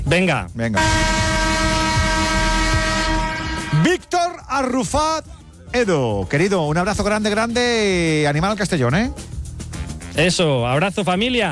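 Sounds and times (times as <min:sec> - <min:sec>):
speech: 0:00.1 - 0:01.2, 0:03.8 - 0:09.4, 0:10.2 - 0:11.5
horn blaring: 0:00.8 - 0:04.2.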